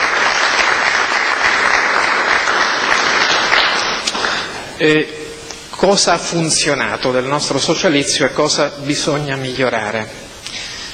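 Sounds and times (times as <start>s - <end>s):
audience applauding in tribute to an honorary president: 0.0s - 4.7s
speech: 4.8s - 5.2s, 5.8s - 10.2s.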